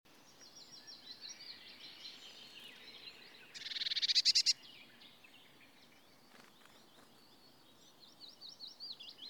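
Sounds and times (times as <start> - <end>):
faint high chirps from other birds: 0.3 - 9.2
Eurasian blue tit Cyanistes caeruleus churring call: 3.6 - 4.6.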